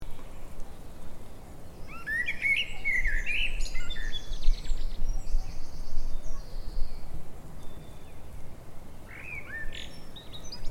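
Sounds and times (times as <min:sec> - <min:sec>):
low background noise: 0:00.0 - 0:10.6
common blackbird singing: 0:01.8 - 0:08.3, 0:09.0 - 0:10.6.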